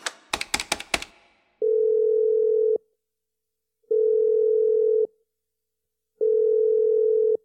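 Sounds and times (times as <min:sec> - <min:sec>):
clicks of a handset being picked up and dialed: 0:00.0 - 0:01.1
telephone ringback tones: 0:01.6 - 0:02.8, 0:03.9 - 0:05.1, 0:06.2 - 0:07.4.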